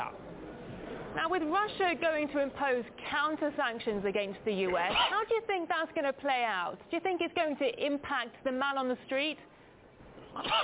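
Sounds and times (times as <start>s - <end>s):
speech: 1.2s - 9.5s, 10.3s - 10.6s
sneeze: 4.8s - 5.2s, 10.4s - 10.6s.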